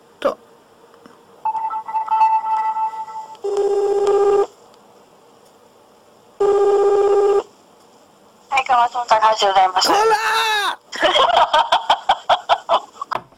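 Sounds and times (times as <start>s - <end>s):
speech: 0.2s - 0.4s, 8.9s - 11.7s
electronic phone ringing: 1.5s - 4.5s, 6.4s - 7.4s
laughter: 10.9s - 13.1s.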